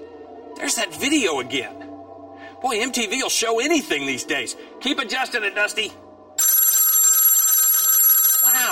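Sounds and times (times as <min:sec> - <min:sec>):
speech: 0:00.7 - 0:01.8, 0:02.6 - 0:06.0
telephone bell ringing with a bright metallic trill: 0:06.4 - 0:08.7.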